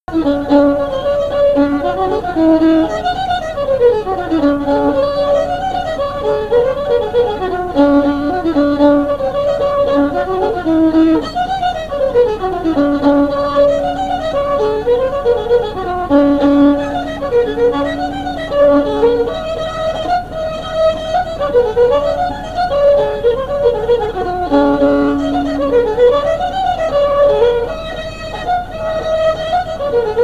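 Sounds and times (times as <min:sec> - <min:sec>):
fiddle: 0:00.0 - 0:30.2.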